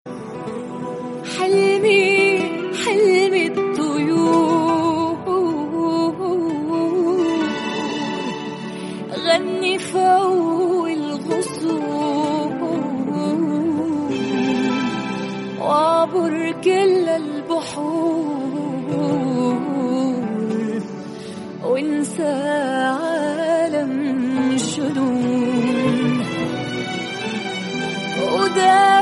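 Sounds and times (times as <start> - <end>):
Arabic song: 0.3 - 21.6, 22.9 - 29.0.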